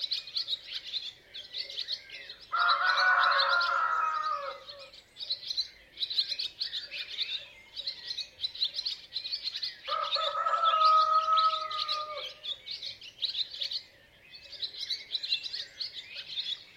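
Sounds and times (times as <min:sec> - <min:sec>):
chorus of small birds chirping: 0:00.0 - 0:16.7
rooster crowing: 0:02.5 - 0:04.9, 0:09.9 - 0:12.4.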